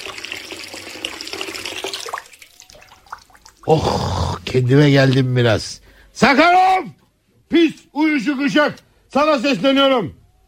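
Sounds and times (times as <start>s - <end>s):
tap water running while someone washes their face: 0.0s - 3.8s
speech: 3.7s - 6.6s, 7.5s - 10.2s.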